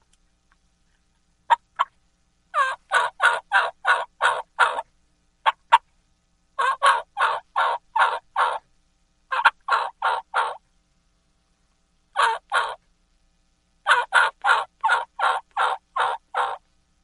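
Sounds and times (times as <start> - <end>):
raspy young male turkey yelps made on a hand call: 2.5 - 5.8, 6.6 - 8.6, 9.3 - 10.6, 12.2 - 12.8, 13.8 - 16.6.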